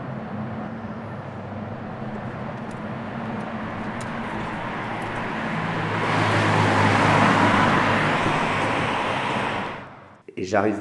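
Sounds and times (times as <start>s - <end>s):
dense traffic of cars and heavy trucks on the N12 highway: 0.0s - 10.2s
speech: 10.4s - 10.7s.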